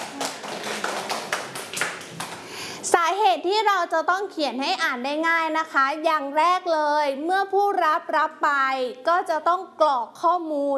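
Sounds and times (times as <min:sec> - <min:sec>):
children clapping for a classmate: 0:00.0 - 0:02.5
speech: 0:03.1 - 0:10.7.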